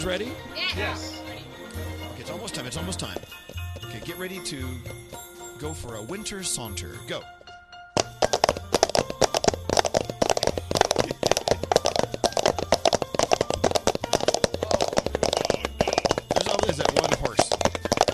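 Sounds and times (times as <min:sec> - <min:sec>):
speech: 0:00.0 - 0:07.4
red plastic cups imitating horse hoof clip-clops: 0:08.0 - 0:18.1.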